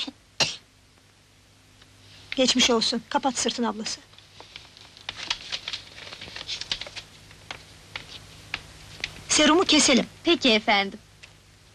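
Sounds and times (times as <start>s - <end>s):
child coughing: 0.0s - 0.7s
speech: 2.4s - 4.1s, 9.4s - 11.0s.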